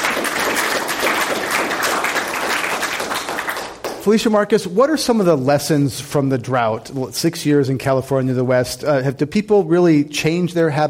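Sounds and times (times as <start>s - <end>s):
audience applause: 0.0s - 4.1s
speech: 4.0s - 10.8s.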